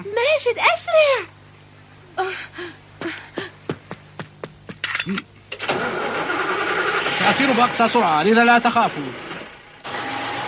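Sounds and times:
speech: 0:00.0 - 0:01.4, 0:02.2 - 0:03.2, 0:05.0 - 0:05.3, 0:07.2 - 0:09.2
truck engine cranking and starting: 0:05.5 - 0:10.4.

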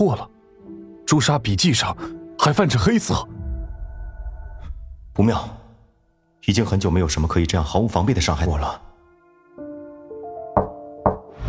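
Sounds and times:
speech: 0:00.0 - 0:00.3, 0:01.1 - 0:03.4, 0:05.2 - 0:05.6, 0:06.4 - 0:08.9
sharp hollow knocks on a door: 0:10.6 - 0:11.3.

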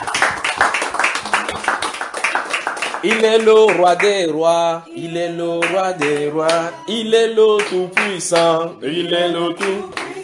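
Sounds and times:
audience clapping at a church worship service: 0:00.0 - 0:04.2, 0:05.6 - 0:06.7, 0:07.6 - 0:08.6, 0:09.6 - 0:10.2
speech: 0:03.0 - 0:10.2.

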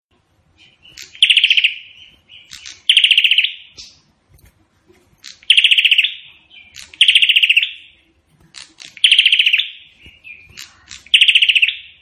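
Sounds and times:
Prinia song in the AK-47 gunshot style: 0:00.4 - 0:04.3, 0:05.1 - 0:11.9.

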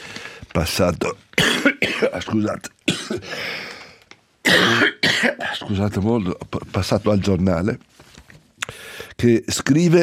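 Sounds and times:
speech: 0:00.6 - 0:03.6, 0:05.7 - 0:08.0, 0:09.2 - 0:10.0
man coughing: 0:01.4 - 0:02.3, 0:02.9 - 0:03.4, 0:04.5 - 0:05.8.

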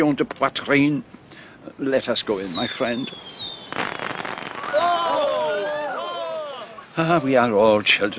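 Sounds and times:
speech: 0:00.0 - 0:03.4, 0:07.0 - 0:08.1
fireworks whistling: 0:02.2 - 0:07.0
fireworks crackling pops: 0:02.3 - 0:05.0.

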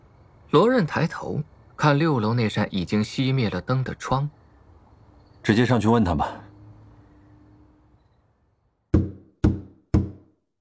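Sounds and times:
speech: 0:00.5 - 0:04.4, 0:05.4 - 0:06.4
heavy knocks on a door: 0:08.9 - 0:10.3.

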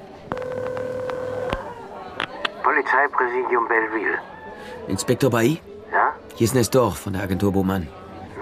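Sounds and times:
telephone dialing tones when making a call: 0:00.3 - 0:01.8
speech: 0:02.9 - 0:04.3, 0:04.9 - 0:08.0.

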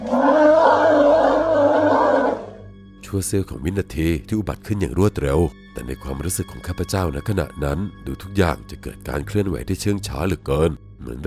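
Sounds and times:
large tusked elephant trumpeting loudly: 0:00.0 - 0:02.6
speech: 0:03.1 - 0:11.2.

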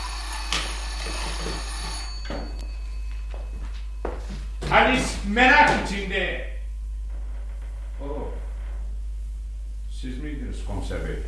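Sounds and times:
doorbell ringing: 0:00.0 - 0:06.1
low steady hum: 0:00.0 - 0:11.2
speech: 0:04.7 - 0:06.4.

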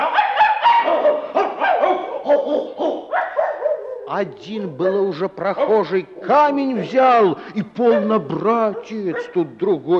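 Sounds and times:
pack of dogs barking: 0:00.0 - 0:04.2, 0:07.8 - 0:09.7
speech: 0:04.1 - 0:09.9.

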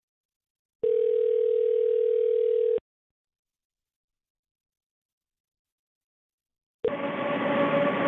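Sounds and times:
steady mid-pitched telephone tone from a blocked-number call: 0:00.8 - 0:02.8
loud dense telephone line sound: 0:06.8 - 0:08.0.

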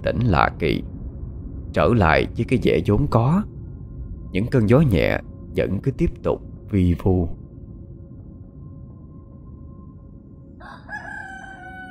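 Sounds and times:
speech: 0:00.0 - 0:00.9, 0:01.7 - 0:03.5, 0:04.3 - 0:07.4
rooster crowing before dawn: 0:10.6 - 0:11.8.

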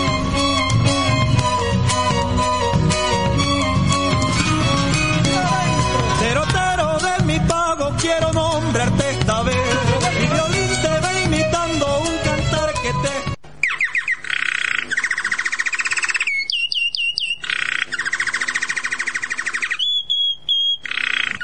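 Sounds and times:
music: 0:00.0 - 0:13.4
goldfinch singing: 0:13.6 - 0:21.4.

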